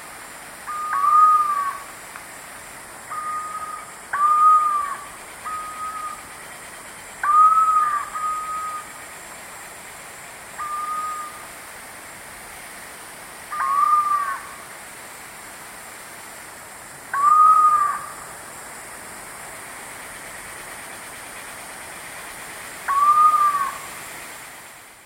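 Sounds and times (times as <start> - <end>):
background hiss: 0.0 - 25.0
screaming piha giving whistled calls in South American eastern lowlands: 0.7 - 1.8, 3.1 - 6.2, 7.2 - 8.9, 10.6 - 11.4, 13.6 - 14.4, 22.9 - 23.9.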